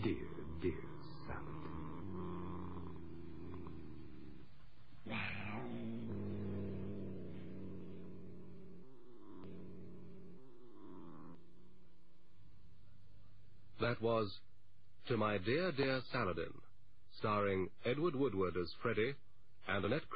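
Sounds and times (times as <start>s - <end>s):
cat purring: 0.0s - 13.4s
speech: 0.6s - 0.9s, 13.9s - 20.1s.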